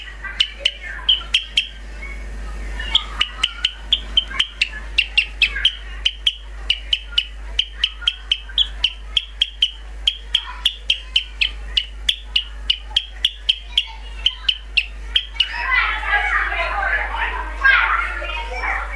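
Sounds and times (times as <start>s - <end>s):
sparrow song: 0.0s - 16.6s
low steady hum: 0.0s - 18.9s.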